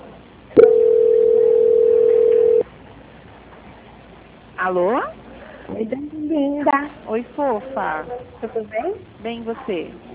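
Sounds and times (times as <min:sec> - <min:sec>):
telephone line tone during a call transfer: 0:00.6 - 0:02.6
speech: 0:04.7 - 0:10.1.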